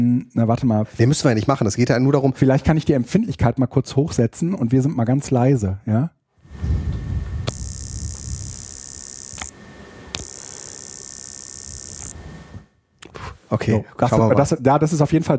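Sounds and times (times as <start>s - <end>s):
speech: 0.0s - 6.8s, 13.5s - 15.3s
sharp clicks: 7.5s - 9.5s, 10.1s - 12.2s
electrical crackling and static hiss from a pen against a microphone: 7.5s - 12.2s.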